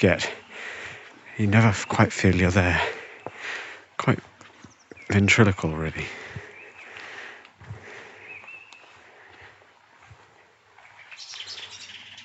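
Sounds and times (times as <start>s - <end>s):
speech: 0.0s - 0.4s, 1.4s - 4.3s, 5.1s - 6.2s
blackbird sharp alarm calls: 0.0s - 3.7s, 4.4s - 7.2s, 8.1s - 9.0s, 10.8s - 12.2s
faint birdsong of other birds: 0.0s - 12.2s
steady outdoor hiss: 0.0s - 12.2s.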